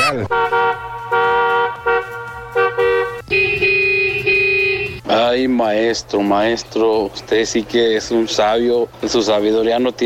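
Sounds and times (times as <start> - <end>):
car horns honking in heavy freeway traffic: 0.0 - 5.2
speech: 0.1 - 0.6, 5.4 - 10.0.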